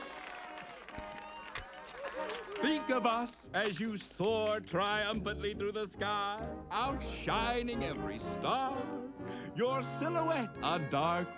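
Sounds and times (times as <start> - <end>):
crowd applauding and cheering: 0.0 - 3.5
speech: 2.2 - 11.3.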